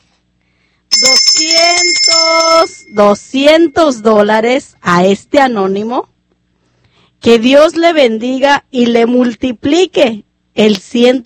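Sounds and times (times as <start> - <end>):
hand bell rung at a religious gathering to thank a donor: 0.9 - 4.3
speech: 2.9 - 6.1, 7.2 - 11.2.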